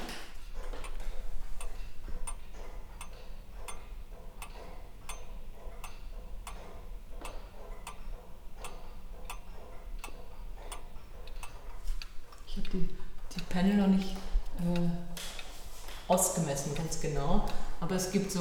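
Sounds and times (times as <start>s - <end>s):
low hum: 0.0s - 18.3s
small pendulum wall clock with opened case ticking: 0.0s - 18.3s
speech: 12.7s - 13.0s, 13.6s - 15.0s, 16.1s - 18.3s.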